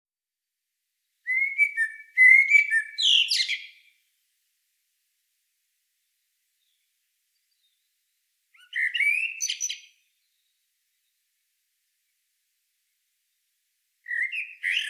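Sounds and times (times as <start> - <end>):
common blackbird song: 1.2 - 4.1, 6.6 - 11.4, 13.2 - 14.8.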